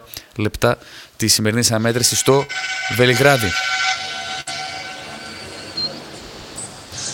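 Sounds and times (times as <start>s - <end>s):
speech: 0.4s - 4.0s
basketball scorer's table horn blaring: 1.8s - 6.2s.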